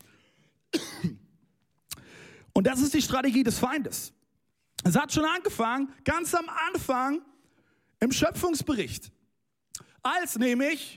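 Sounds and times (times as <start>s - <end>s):
person clearing throat: 0.7s - 1.3s
person coughing: 0.7s - 1.4s
speech: 2.6s - 4.2s, 4.8s - 7.3s, 8.0s - 9.2s, 10.0s - 10.9s.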